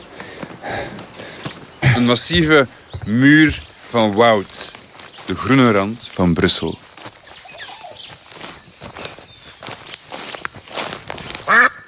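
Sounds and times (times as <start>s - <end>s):
rustling and crunching footsteps through a forest: 0.0s - 11.8s
speech: 2.0s - 4.6s, 5.3s - 6.8s
short loud duck quack: 11.5s - 11.8s.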